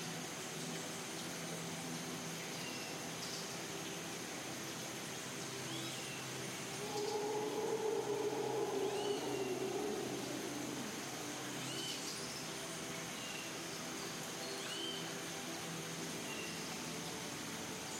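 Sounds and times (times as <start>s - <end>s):
rainforest ambience: 0.0s - 17.9s
ambient music: 6.5s - 13.3s.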